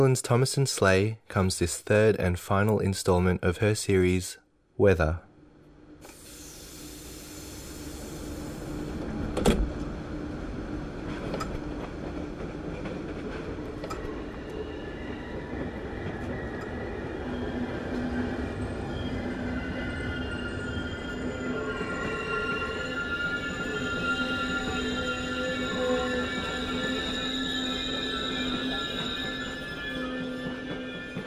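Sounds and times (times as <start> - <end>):
speech: 0.0 - 5.3
train rolling along the rails: 6.3 - 31.2.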